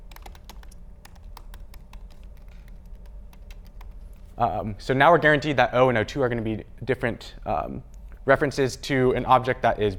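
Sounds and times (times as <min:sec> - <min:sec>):
typing on a computer keyboard: 0:00.0 - 0:04.2
low constant hum: 0:00.0 - 0:09.9
speech: 0:04.4 - 0:09.9.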